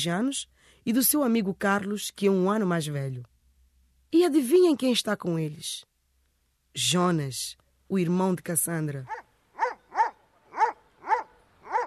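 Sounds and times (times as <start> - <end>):
speech: 0.0 - 3.3, 4.1 - 5.9, 6.8 - 9.2
dog barking: 9.1 - 11.8.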